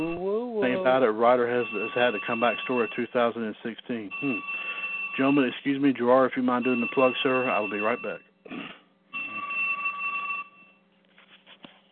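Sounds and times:
speech: 0.8 - 4.6, 5.2 - 8.8
landline telephone ringing electronically: 0.9 - 3.2, 4.1 - 5.6, 6.5 - 8.2, 9.2 - 10.8.

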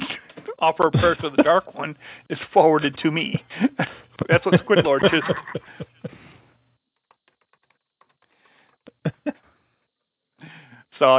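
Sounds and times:
laughter: 0.0 - 1.8, 3.4 - 6.3, 9.0 - 9.4
speech: 0.6 - 6.0, 11.0 - 11.1
typing on a computer keyboard: 7.0 - 8.9.

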